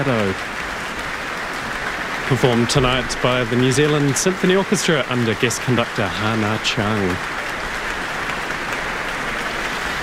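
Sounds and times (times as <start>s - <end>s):
speech: 0.0s - 0.6s, 2.3s - 7.4s
large concert audience applauding: 0.0s - 10.0s.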